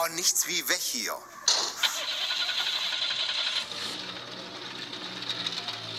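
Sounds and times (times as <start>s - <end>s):
speech: 0.1s - 2.2s
car with a broken exhaust revving and driving off: 2.9s - 5.9s.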